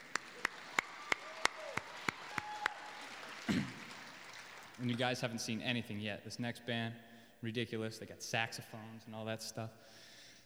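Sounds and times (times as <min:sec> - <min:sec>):
audience clapping: 0:00.0 - 0:05.4
speech: 0:03.5 - 0:03.8, 0:04.8 - 0:10.1.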